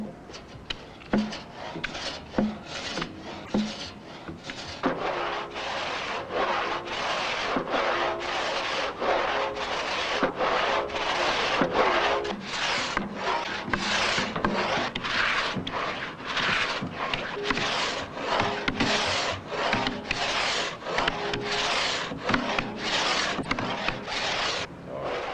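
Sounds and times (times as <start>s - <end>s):
hand saw rasping through thick oak timber: 0.4s - 25.3s.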